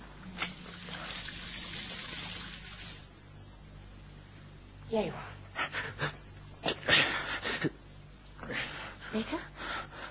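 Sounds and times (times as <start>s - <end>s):
low hum: 0.0s - 10.1s
water pouring into a glass: 0.4s - 3.1s
speech: 4.9s - 5.4s, 9.2s - 9.5s.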